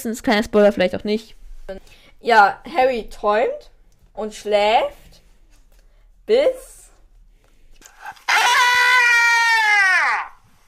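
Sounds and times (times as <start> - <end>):
speech: 0.0 - 5.1, 6.3 - 6.8
person screaming: 8.1 - 10.4.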